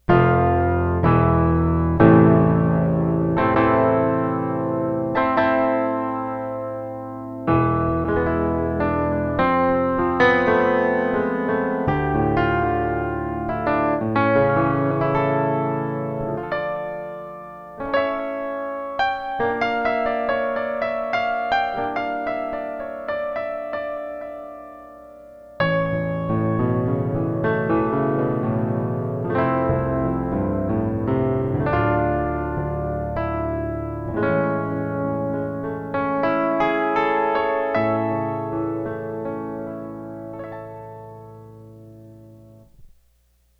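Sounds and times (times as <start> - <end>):
acoustic piano: 0.0 - 43.5.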